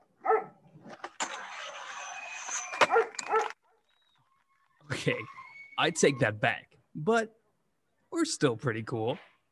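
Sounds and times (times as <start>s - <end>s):
dog on a skateboard barking: 0.2s - 0.6s, 2.9s - 3.6s
skateboard rolling and scraping: 0.8s - 3.6s
speech: 5.0s - 7.4s, 8.2s - 9.3s.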